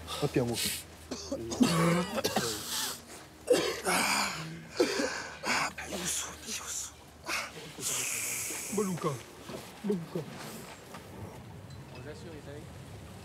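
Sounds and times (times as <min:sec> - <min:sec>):
speech: 0:00.2 - 0:02.7, 0:08.8 - 0:10.6
throat clearing: 0:01.1 - 0:05.6
person coughing: 0:01.1 - 0:06.1.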